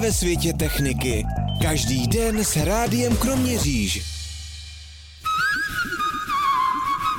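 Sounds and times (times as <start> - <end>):
speech: 0.0 - 4.2
soft rhythmic musical backing: 0.0 - 7.1
loud whistled tone: 0.7 - 2.6, 5.2 - 7.1.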